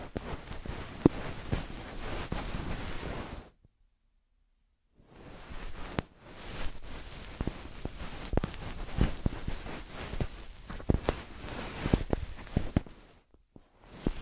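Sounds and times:
feather stick crackling and brushing while cleaning an ear: 0.0 - 3.4, 5.4 - 13.2.

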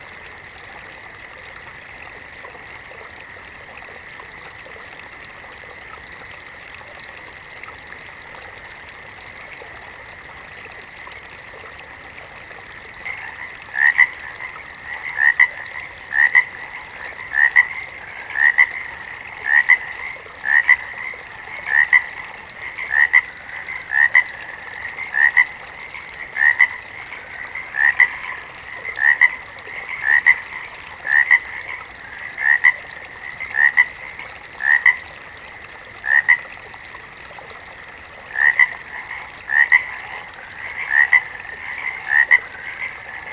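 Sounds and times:
high-pitched chorus of frogs in a pond: 12.4 - 36.8, 37.9 - 43.3.

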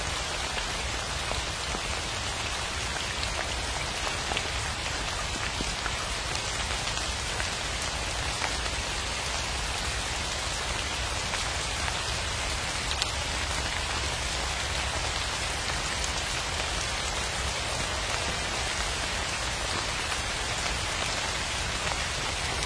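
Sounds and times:
spring rain pattering on a surface: 0.0 - 22.6.

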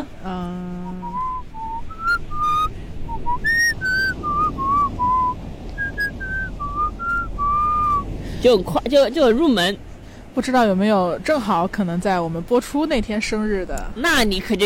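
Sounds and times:
person whistling a tune: 0.8 - 8.0
speech: 8.4 - 9.8, 10.4 - 14.6.

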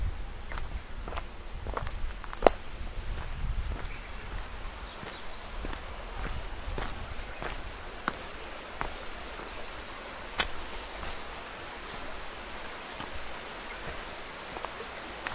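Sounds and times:
low gusty rumble: 0.0 - 8.1
running water: 0.0 - 15.3
wind: 0.0 - 15.3
footsteps crunching along a woodland path: 0.4 - 15.3.

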